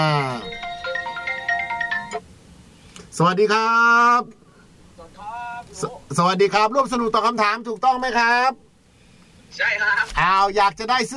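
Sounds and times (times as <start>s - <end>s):
speech: 0.0s - 0.5s, 3.2s - 4.4s, 5.2s - 8.6s, 9.5s - 11.1s
telephone ringtone signalling an incoming call: 0.2s - 2.2s.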